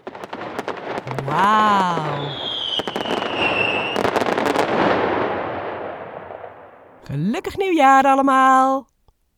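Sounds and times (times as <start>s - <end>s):
firework bursting high in the sky into crackling pops: 0.0s - 6.9s
firework rocket whistling as it rises: 1.0s - 4.7s
speech: 1.1s - 2.4s, 7.1s - 8.9s.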